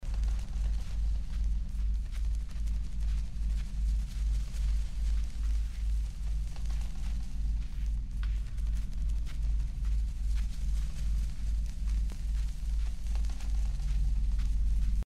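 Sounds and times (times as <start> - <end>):
abyss soundscape: 0.0 - 15.0.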